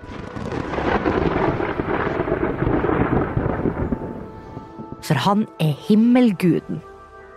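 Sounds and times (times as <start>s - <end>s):
heavy thunder rumbling with crackling roar and deep booms: 0.0s - 5.6s
speech: 5.1s - 6.9s.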